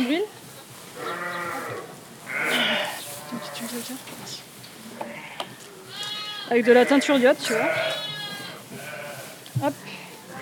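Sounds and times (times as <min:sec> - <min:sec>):
newborn lambs bleating on a sheep farm: 0:01.0 - 0:03.8, 0:05.0 - 0:10.4
speech: 0:03.8 - 0:04.6, 0:06.5 - 0:08.0, 0:09.6 - 0:09.8.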